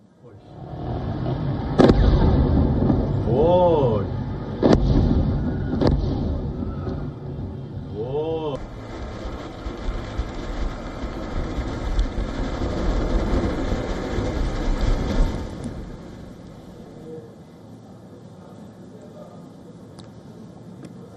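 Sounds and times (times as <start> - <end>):
steady low rumble: 0.0 - 18.4
sharp booming explosions in a port city: 0.5 - 17.1.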